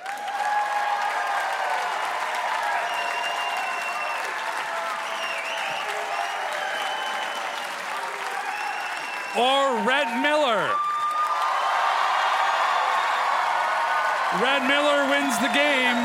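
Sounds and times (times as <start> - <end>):
audience cheers and whoops: 0.0 - 16.0
large audience applauding: 0.0 - 16.0
speech: 9.4 - 10.9, 14.4 - 16.0.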